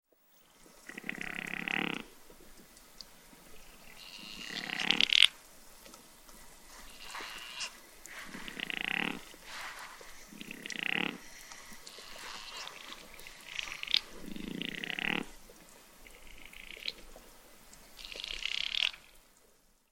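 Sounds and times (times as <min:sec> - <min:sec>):
chamois Rupicapra rupicapra bleating: 0:00.8 - 0:02.2, 0:03.5 - 0:05.3, 0:06.7 - 0:09.4, 0:10.3 - 0:15.4, 0:18.0 - 0:19.0.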